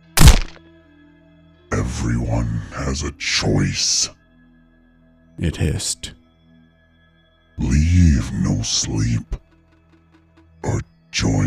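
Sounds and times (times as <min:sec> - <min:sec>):
heavy thud of a body hitting the ground: 0:00.1 - 0:00.6
speech: 0:01.9 - 0:04.2, 0:05.4 - 0:06.2, 0:07.6 - 0:09.4, 0:10.6 - 0:11.4.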